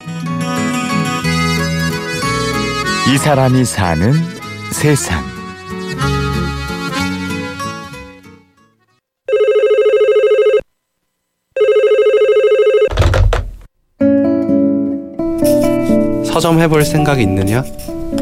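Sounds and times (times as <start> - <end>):
music: 0.0 - 9.1, 14.0 - 18.1
speech: 3.1 - 5.3, 16.4 - 18.1
telephone ringing with electronic trill: 9.3 - 10.7, 11.6 - 12.9.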